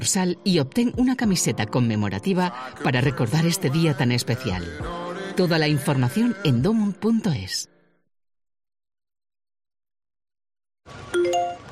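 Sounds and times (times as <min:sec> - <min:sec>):
speech: 0:00.0 - 0:07.7
security system two-note electronic notification chime for a person detected in the garden: 0:11.2 - 0:11.7.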